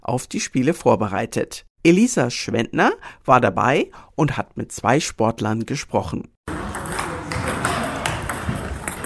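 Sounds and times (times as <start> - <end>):
speech: 0.1 - 6.3
table tennis balls clicking and bouncing at many tables in a hall: 6.5 - 9.0.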